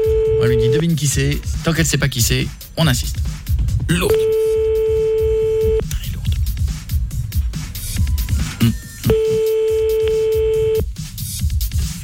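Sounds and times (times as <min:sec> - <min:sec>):
continuous music: 0:00.0 - 0:12.0
speech: 0:00.4 - 0:04.5
telephone ringback tone while an outgoing call connects: 0:04.2 - 0:05.8, 0:09.1 - 0:10.8.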